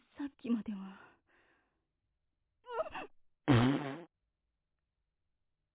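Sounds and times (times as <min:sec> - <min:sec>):
speech: 0:00.4 - 0:01.1
buzzy fart sounds: 0:03.5 - 0:04.1.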